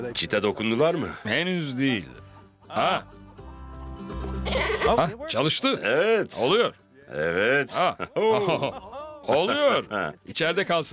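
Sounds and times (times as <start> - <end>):
speech: 0.0 - 3.2, 4.0 - 10.9
goat bleating in a farm enclosure: 4.4 - 5.0
laughter: 7.6 - 10.3.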